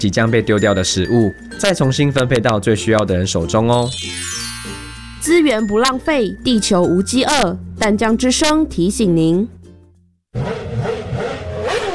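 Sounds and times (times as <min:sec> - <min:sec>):
speech: 0:00.0 - 0:04.4, 0:05.2 - 0:09.6
motorcycle engine revving as rider accelerates: 0:10.3 - 0:11.9.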